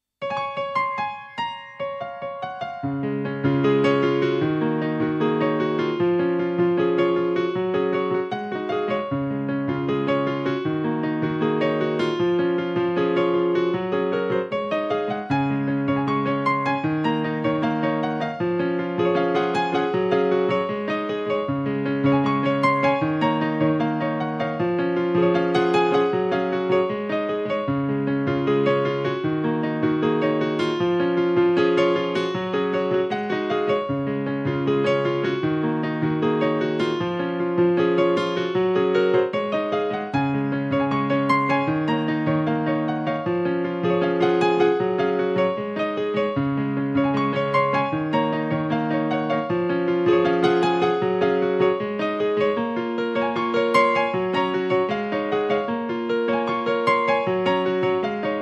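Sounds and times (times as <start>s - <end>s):
upbeat happy piano instrumental: 0.2s - 58.3s.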